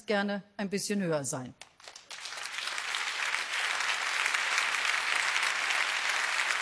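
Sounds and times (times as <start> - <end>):
speech: 0.1 - 1.7
audience applause: 1.8 - 6.6.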